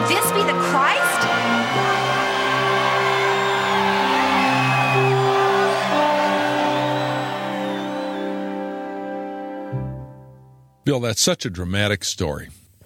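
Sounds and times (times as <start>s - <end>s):
loud dense crowd of voices clamoring together: 0.2s - 8.6s
speech: 10.9s - 12.8s.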